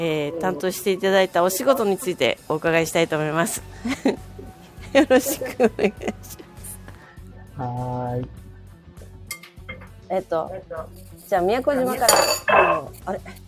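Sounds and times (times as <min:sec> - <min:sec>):
speech: 0:00.0 - 0:04.3, 0:04.9 - 0:06.4, 0:07.6 - 0:08.4, 0:10.1 - 0:13.4
laughter: 0:03.8 - 0:06.4
dishes and cutlery clinking in a busy restaurant: 0:09.3 - 0:10.0, 0:11.8 - 0:13.0.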